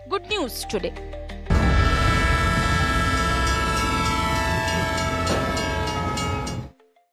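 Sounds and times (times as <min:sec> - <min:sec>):
speech: 0:00.2 - 0:01.2
train engine rumble pulling away from a station: 0:01.5 - 0:06.7.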